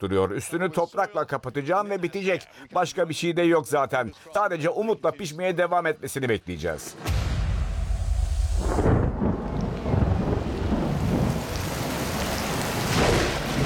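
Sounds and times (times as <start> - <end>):
speech: 0.0 - 7.3
low thunder rumbling faintly: 7.1 - 13.6
steady rain pattering outdoors: 8.6 - 13.6.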